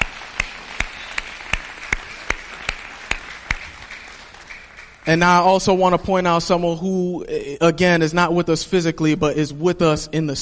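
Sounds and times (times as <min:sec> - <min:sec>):
audience applauding: 0:00.0 - 0:05.4
speech: 0:05.1 - 0:10.4.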